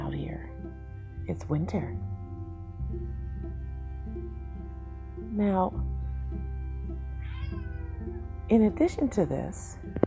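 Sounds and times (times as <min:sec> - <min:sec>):
steady low hum: 0:00.0 - 0:10.0
speech: 0:01.3 - 0:02.1, 0:05.4 - 0:05.9, 0:08.5 - 0:09.9
cat meowing to come inside: 0:07.2 - 0:08.2.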